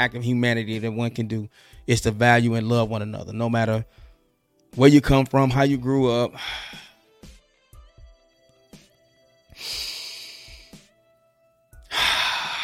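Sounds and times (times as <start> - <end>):
speech: 0.0 - 4.0, 4.7 - 6.8
deep breathing: 6.4 - 7.1, 9.5 - 10.9, 11.8 - 12.6.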